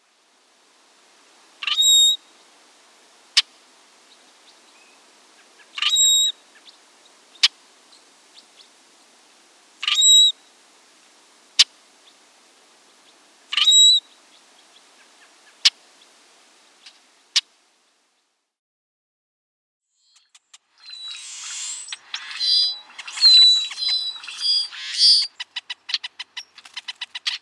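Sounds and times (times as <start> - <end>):
Brewer's Blackbird calling: 1.6 - 2.2, 4.8 - 7.6, 9.8 - 10.4, 13.5 - 14.1, 20.8 - 27.4.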